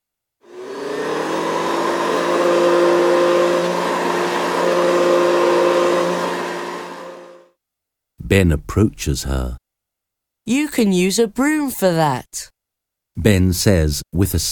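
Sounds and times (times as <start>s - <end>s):
vacuum cleaner running at an inn: 0.4s - 7.5s
speech: 8.3s - 9.6s, 10.4s - 12.5s, 13.2s - 14.5s.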